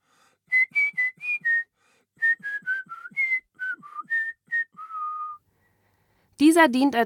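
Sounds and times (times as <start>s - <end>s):
person whistling a clear tune: 0.5s - 5.4s
speech: 6.6s - 7.0s.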